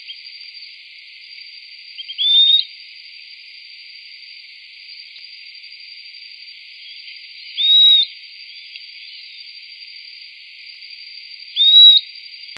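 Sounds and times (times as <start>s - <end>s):
bird whistling short upslurred calls: 2.0s - 2.7s, 7.6s - 8.1s, 11.6s - 12.0s.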